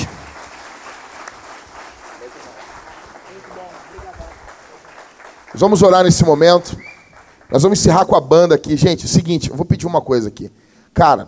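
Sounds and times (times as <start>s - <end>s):
crowd clapping in a large room: 0.0s - 8.1s
speech: 5.6s - 6.9s, 7.5s - 11.2s.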